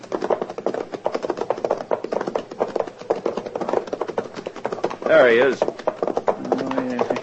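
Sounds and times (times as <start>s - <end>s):
horse hooves clopping while pulling a wagon: 0.0s - 7.2s
wagon rattling behind a horse: 0.0s - 7.2s
speech: 5.1s - 5.7s.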